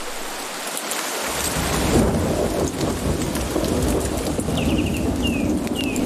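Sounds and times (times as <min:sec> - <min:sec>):
heavy storm rain pouring over a jungle in Costa Rica: 0:00.0 - 0:06.0
deep thunder rumbling: 0:01.3 - 0:06.0.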